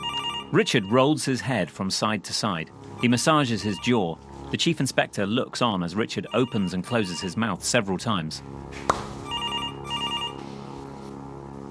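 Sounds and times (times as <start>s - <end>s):
telephone ringing: 0.0s - 1.0s, 6.3s - 7.4s, 9.3s - 10.4s
speech: 0.5s - 9.1s.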